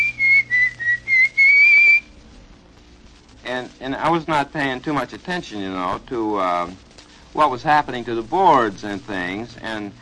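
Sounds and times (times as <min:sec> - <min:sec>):
person whistling a short bright melody: 0:00.0 - 0:02.1
faint low hum: 0:00.0 - 0:09.9
speech: 0:03.5 - 0:09.9.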